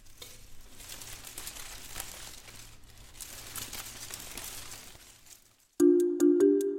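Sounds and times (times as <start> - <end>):
dry leaves rustling and crackling: 0.0 - 5.8
loud bright electronic chime melody: 5.8 - 6.7.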